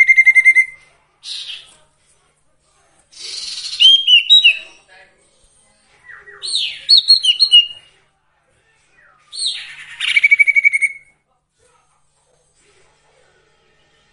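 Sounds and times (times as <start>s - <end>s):
song of quick chirps, whistles and trill: 0.0s - 1.8s, 3.1s - 4.9s, 5.5s - 8.0s, 9.0s - 11.1s.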